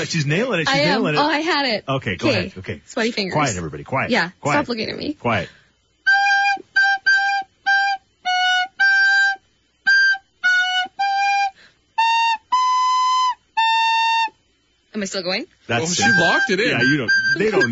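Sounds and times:
speech: 0.0s - 5.6s, 15.0s - 17.7s
person whistling a high-pitched tune: 6.1s - 14.4s, 15.8s - 17.7s.

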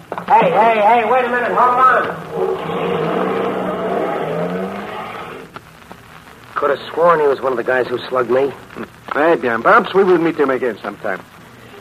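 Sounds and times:
speech: 0.3s - 3.1s, 6.6s - 11.3s
heavy truck engine revving and driving off: 2.2s - 5.5s.

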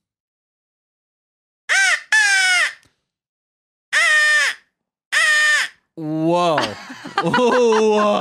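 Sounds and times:
crow call whistle imitating raspy crow caws: 1.7s - 2.8s, 4.0s - 4.6s, 5.2s - 5.8s
speech: 6.0s - 8.1s
laughter: 6.4s - 8.1s.

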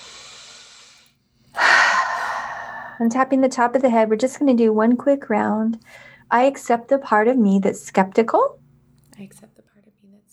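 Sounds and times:
deep breath during a rib-tapping relaxation exercise: 0.0s - 3.1s, 5.8s - 6.3s
speech: 3.0s - 8.6s, 9.2s - 9.6s.

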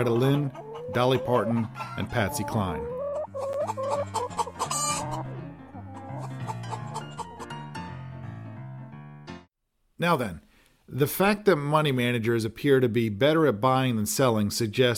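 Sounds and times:
speech: 0.0s - 3.0s, 10.0s - 14.9s
hens clucking: 0.0s - 7.5s.

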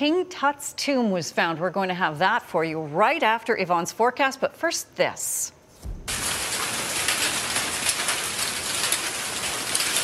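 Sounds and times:
speech: 0.0s - 5.6s
hail pelting hard surfaces and water: 6.1s - 10.0s.

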